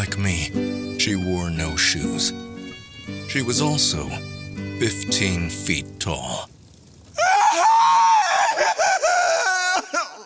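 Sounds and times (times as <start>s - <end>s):
speech: 0.0s - 2.5s, 3.3s - 6.5s
loud shrill scream: 7.2s - 10.2s.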